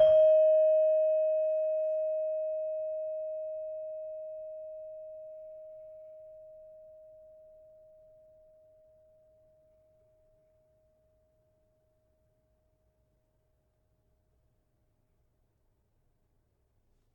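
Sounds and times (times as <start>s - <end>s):
gamelan saron metallophone note: 0.0s - 4.4s.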